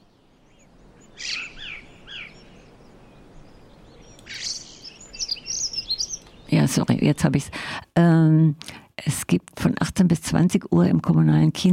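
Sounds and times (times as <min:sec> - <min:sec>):
recorded birdsong played as background: 0:00.0 - 0:07.6
speech: 0:06.7 - 0:11.7.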